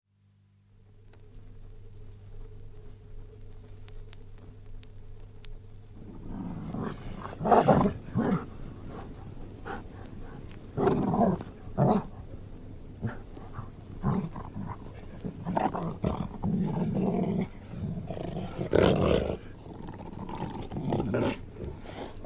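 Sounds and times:
Golden Retriever growling: 6.0s - 12.4s, 13.0s - 22.2s
speech: 7.6s - 8.0s.

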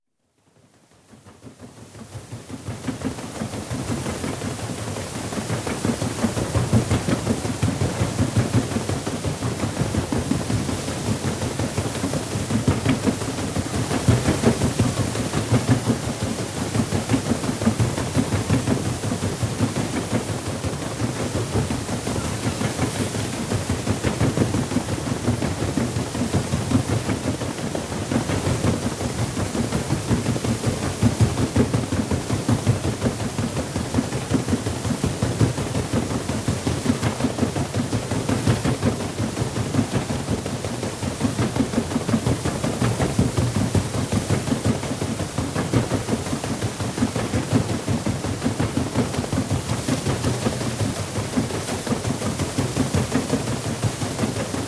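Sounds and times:
paddle steamer paddles thrashing: 1.1s - 54.6s.

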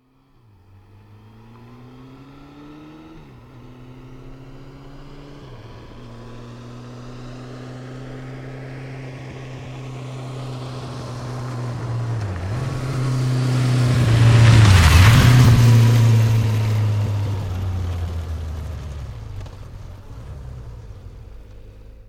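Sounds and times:
Suzuki 750 motorcycle revving up, passing at medium speed and stopping: 0.0s - 22.0s.

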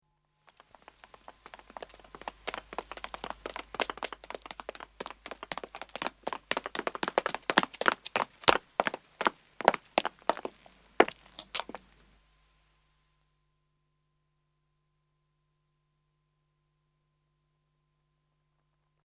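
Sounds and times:
two men running on pavement, approaching and stopping: 0.5s - 11.9s.

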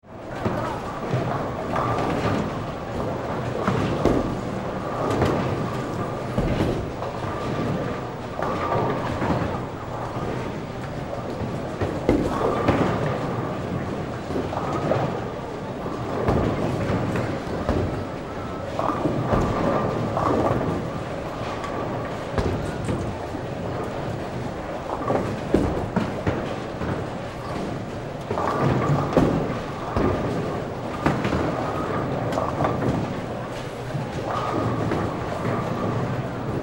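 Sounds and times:
bowling alley ambience: 0.0s - 36.6s.

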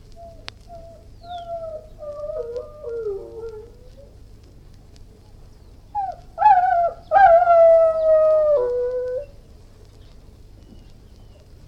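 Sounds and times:
Irish Wolfhound howling: 0.8s - 4.1s, 6.4s - 9.3s.

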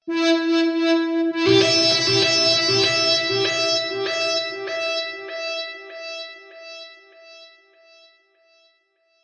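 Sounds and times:
synth loop in E minor at 98 BPM: 0.2s - 5.3s.

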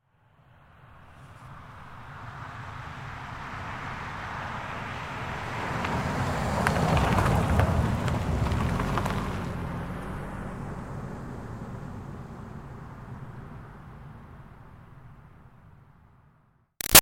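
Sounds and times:
2005 Toyota Highlander V6 driving slowly on dirt around a corner: 1.2s - 16.2s.

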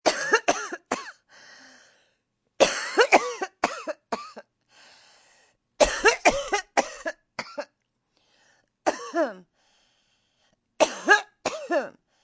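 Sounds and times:
sick woman with a cold coughing a long dry smoker's cough: 0.0s - 1.3s, 2.6s - 4.5s, 5.8s - 7.8s, 8.9s - 9.5s, 10.8s - 12.0s.

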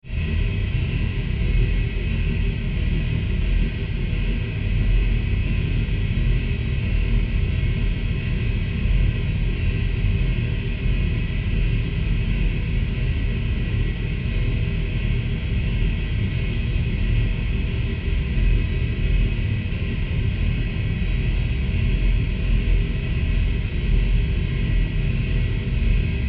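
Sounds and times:
pulsing mechanical industrial factory rumble: 0.1s - 26.2s.

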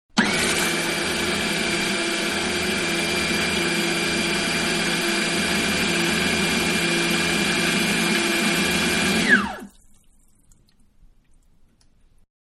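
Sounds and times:
food processor blending wet ingredients: 0.2s - 9.7s.

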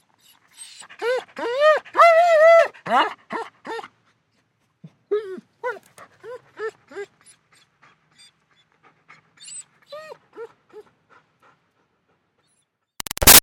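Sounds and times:
excited German Shepherd dog whining: 0.2s - 3.9s, 4.9s - 8.3s, 9.4s - 10.8s
excited German Shepherd dog panting: 6.0s - 12.6s.

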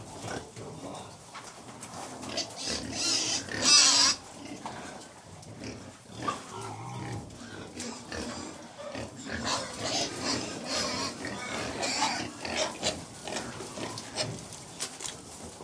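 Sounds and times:
Middle White pigs grunting and squealing while feeding indoors: 0.0s - 14.5s
loud piercing Middle White pig squeal: 2.6s - 4.2s, 7.8s - 13.0s.

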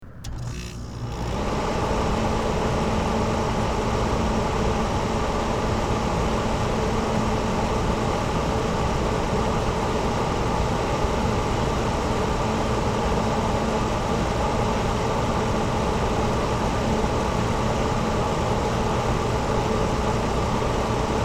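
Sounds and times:
household air conditioner exterior unit running: 0.0s - 21.2s.

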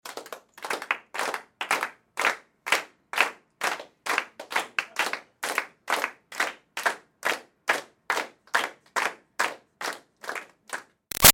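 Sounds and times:
small indoor crowd clapping loosely to the beat: 0.0s - 11.3s.

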